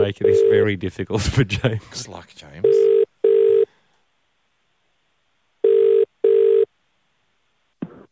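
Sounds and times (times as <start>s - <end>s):
speech: 0.1s - 3.0s
telephone ringback tone heard from the caller's end: 0.2s - 0.6s, 2.7s - 3.7s, 5.6s - 6.7s.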